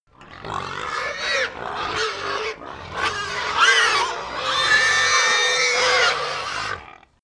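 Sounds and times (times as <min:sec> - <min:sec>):
pig herd screaming: 0:00.1 - 0:07.2.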